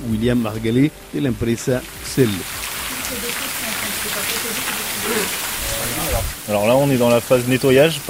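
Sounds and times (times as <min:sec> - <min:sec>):
speech: 0:00.1 - 0:02.7, 0:05.1 - 0:08.0
fine water spray misting the stone facade of an ancient arena: 0:01.8 - 0:08.0.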